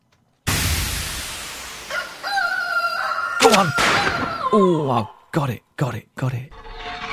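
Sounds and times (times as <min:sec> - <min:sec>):
broadband noise burst: 0:00.5 - 0:03.7
speech: 0:03.4 - 0:06.6.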